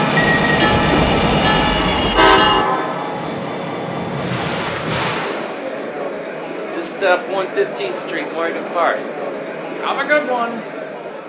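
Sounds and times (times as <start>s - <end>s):
commuter train arriving at station: 0.0s - 11.2s
commuter train tonal horn-like burst: 0.3s - 3.1s
speech: 7.1s - 10.8s.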